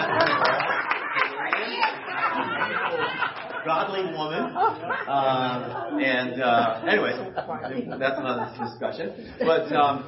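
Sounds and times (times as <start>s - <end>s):
audience clapping: 0.0s - 4.0s
crowd murmur: 0.0s - 8.0s
laughter: 0.0s - 10.0s
speech: 3.7s - 10.0s.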